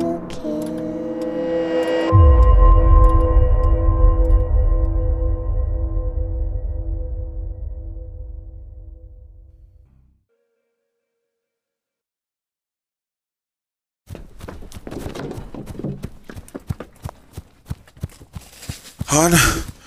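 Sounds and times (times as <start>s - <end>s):
short musical sting: 0.9s - 9.5s
heavy footsteps of people running: 14.1s - 19.8s.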